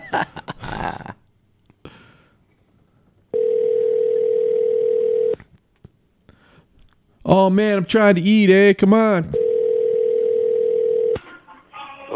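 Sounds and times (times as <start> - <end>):
speech: 0.1 - 1.1, 7.3 - 9.4
landline telephone dial tone: 3.4 - 5.4, 9.4 - 11.2.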